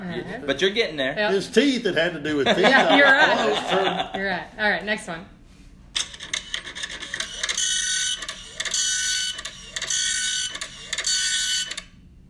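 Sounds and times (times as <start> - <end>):
speech: 0.2 - 5.4
laughter: 2.4 - 4.4
dot matrix printer print-head passes: 6.0 - 11.9.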